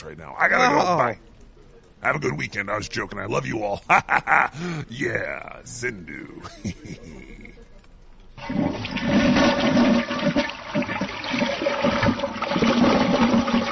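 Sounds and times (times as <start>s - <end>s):
speech: 0.0s - 1.3s, 2.0s - 7.5s, 8.4s - 10.2s
laughter: 3.6s - 5.2s, 6.2s - 7.7s
deep toilet flush: 8.4s - 13.7s.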